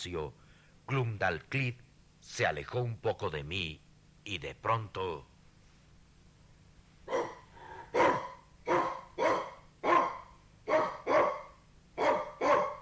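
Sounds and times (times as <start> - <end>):
speech: 0.0 - 5.3
small dog barking: 7.1 - 12.7.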